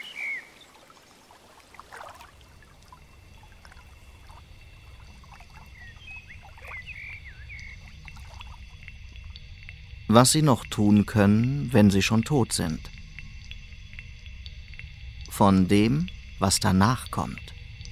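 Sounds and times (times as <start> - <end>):
faint bird chirps: 0.0 - 1.4, 2.8 - 8.9
wind rushing through leafy trees: 0.0 - 12.8
speech: 10.1 - 13.0, 15.4 - 17.5.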